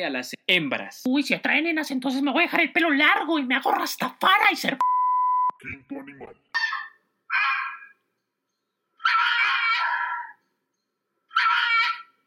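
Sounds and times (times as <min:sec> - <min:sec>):
speech: 0:00.0 - 0:04.9, 0:05.6 - 0:06.6
fox giving harsh raspy calls: 0:06.5 - 0:08.0, 0:09.0 - 0:10.4, 0:11.3 - 0:12.2.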